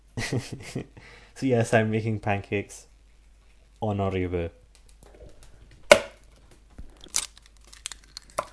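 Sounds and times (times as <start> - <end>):
speech: 0.3 - 2.9, 3.8 - 4.6
eggs cracked open for pancake batter in a kitchen: 4.6 - 8.5
eggshell taps and rustles: 4.7 - 8.5.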